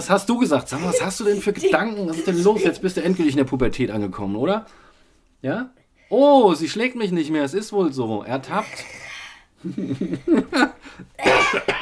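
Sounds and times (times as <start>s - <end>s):
speech: 0.0s - 11.8s
laughter: 0.7s - 3.2s, 9.6s - 10.8s
person coughing: 0.8s - 2.8s, 11.2s - 11.8s.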